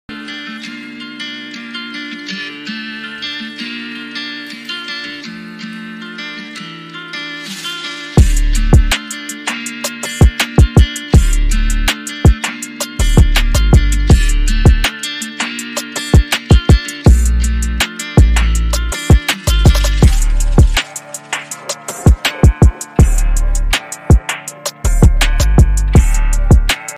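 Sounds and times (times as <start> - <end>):
drum kit: 7.4 - 26.9.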